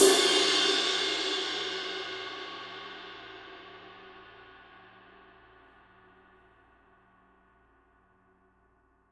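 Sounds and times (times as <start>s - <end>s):
Paiste Signature Dark Energy 22 inch ride Mark I played on edge: 0.0s - 4.9s.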